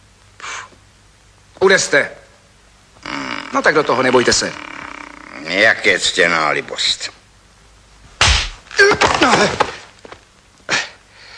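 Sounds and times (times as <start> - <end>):
speech: 1.6 - 2.2, 3.5 - 4.7, 5.4 - 7.2, 8.8 - 9.7
startled vocal cry: 3.0 - 3.7, 4.3 - 6.1
scuffling: 8.0 - 10.3
sharp slap to the face: 8.2 - 8.6.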